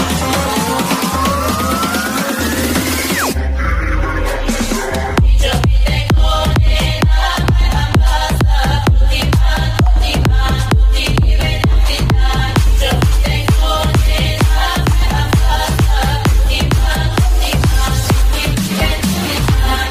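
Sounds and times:
Arabic remix ringtone music: 0.0 - 19.8.

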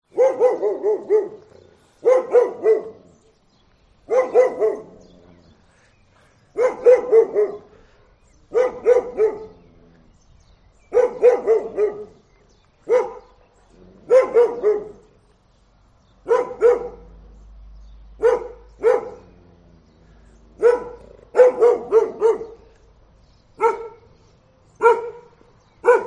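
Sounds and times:
real dog barking as a call tone: 0.1 - 3.1, 4.1 - 5.0, 6.6 - 7.8, 8.5 - 9.6, 10.9 - 12.2, 12.9 - 13.4, 14.1 - 15.1, 16.3 - 17.1, 18.2 - 19.3, 20.6 - 22.7, 23.6 - 24.1, 24.8 - 26.0.

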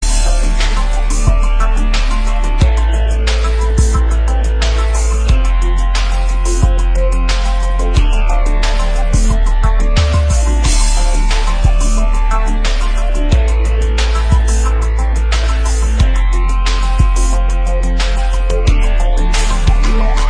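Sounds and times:
heavy metal bass: 0.0 - 20.2.

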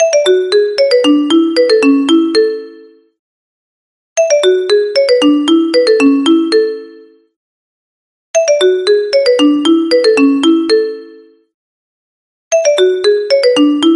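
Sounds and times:
classical mobile phone ringtone: 0.0 - 3.2, 4.2 - 7.3, 8.4 - 11.5, 12.5 - 13.9.

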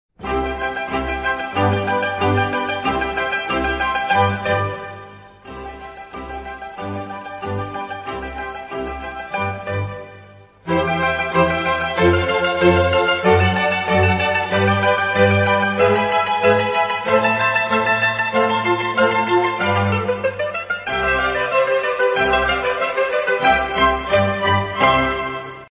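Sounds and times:
mandolin ringtone: 0.2 - 25.6.

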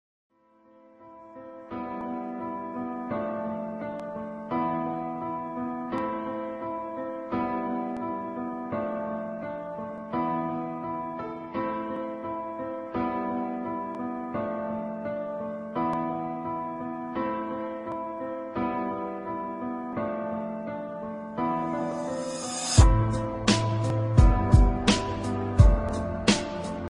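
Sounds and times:
sad emotional piano beat: 0.5 - 26.8.

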